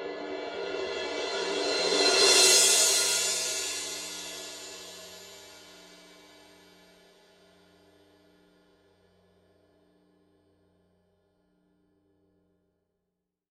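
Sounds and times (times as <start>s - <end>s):
Paiste Rude 18 thin crash cymbal roll: 0.1s - 8.6s.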